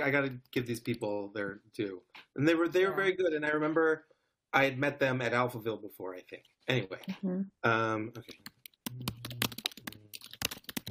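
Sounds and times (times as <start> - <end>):
speech: 0.0 - 9.2
fast typing on a computer keyboard: 8.3 - 10.8.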